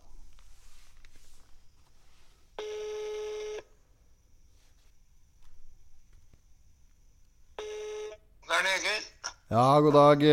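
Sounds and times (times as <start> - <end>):
quiet hiss: 0.0 - 10.3
outgoing phone ringing tone: 2.6 - 3.7, 7.6 - 8.2
speech: 8.6 - 10.3.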